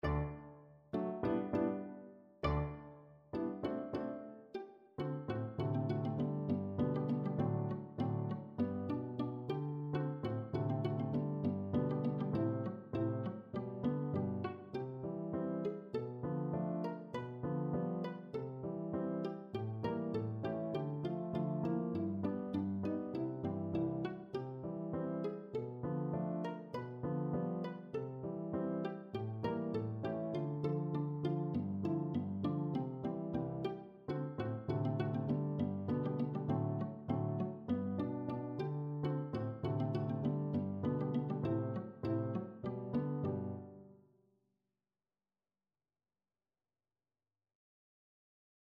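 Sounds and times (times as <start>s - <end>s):
pizzicato polka on viola: 0.0s - 25.7s, 26.3s - 43.8s.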